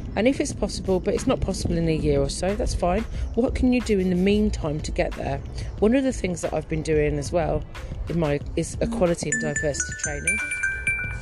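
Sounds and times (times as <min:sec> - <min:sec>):
speech: 0:00.2 - 0:10.6
mobile phone notification tones: 0:08.8 - 0:11.1.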